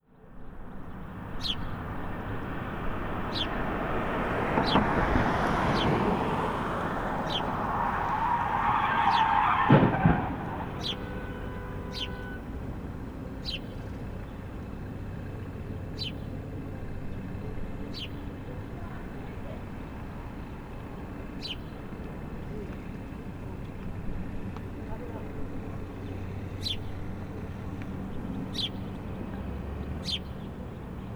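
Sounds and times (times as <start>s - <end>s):
jerk birds: 0.1s - 31.1s
car crash: 4.3s - 11.7s.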